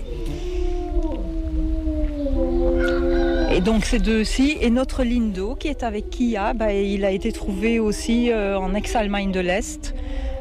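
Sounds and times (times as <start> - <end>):
low rumble: 0.0 - 10.3
pair of gray wolves howling at an animal centre: 0.0 - 10.3
speech: 3.6 - 10.2.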